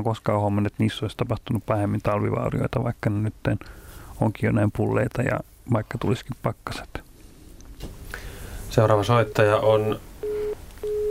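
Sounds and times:
speech: 0.0 - 7.1, 8.7 - 10.1
faint phone line hiss: 0.0 - 11.0
garbled phone line from radio phone-in caller on a bus: 9.0 - 11.0
sustained electronic tones on phone line: 10.2 - 11.0.

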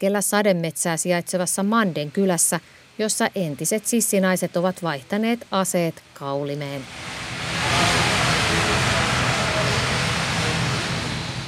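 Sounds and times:
speech: 0.0 - 7.2
helicopter engine and rotors roaring at an airport: 6.8 - 11.4.

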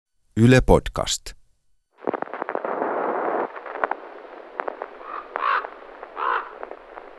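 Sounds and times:
speech: 0.4 - 1.4
ravens croaking over a lake: 2.0 - 7.1.

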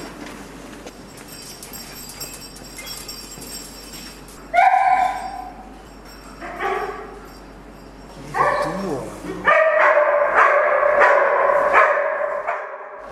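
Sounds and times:
search dog barking: 4.5 - 5.5, 6.5 - 7.2, 8.3 - 13.0.

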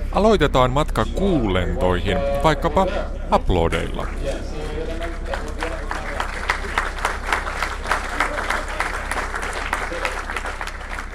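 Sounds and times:
speech: 0.2 - 4.5
applause after a lunar probe crashed into the Moon: 3.6 - 11.1.

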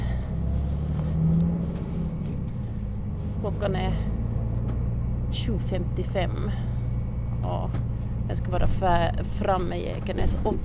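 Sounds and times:
bus engine rumble inside a bus riding toward Ekenäs: 0.0 - 10.6
speech: 3.4 - 4.1, 5.3 - 6.7, 7.4 - 10.6.

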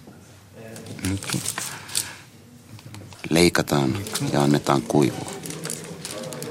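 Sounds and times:
faint voice murmuring: 0.6 - 3.2, 3.8 - 6.5
thin Japanese tissue paper rustling and crinkling as it is folded over a torn page: 0.9 - 2.2, 3.1 - 6.5
speech: 1.0 - 1.8, 3.3 - 5.4.

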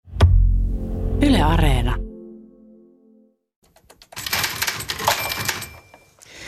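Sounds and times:
sustained tone: 0.3 - 3.5
speech: 1.4 - 2.0
typewriter keys clattering: 3.6 - 6.2.

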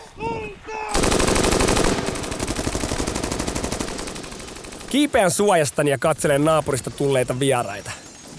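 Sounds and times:
automatic gunfire from many weapons: 0.9 - 5.3
speech: 4.9 - 8.0.

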